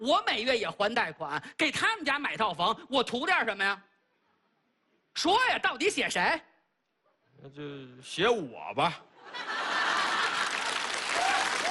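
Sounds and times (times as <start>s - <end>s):
speech: 0.0s - 3.9s, 5.2s - 6.5s, 7.4s - 9.6s
laughter: 9.2s - 10.9s
audience applause: 9.6s - 11.7s.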